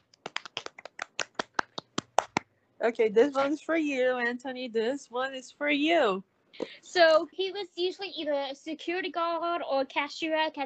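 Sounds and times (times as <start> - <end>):
crisp hand clapping: 0.0 - 2.5
speech: 2.8 - 10.6.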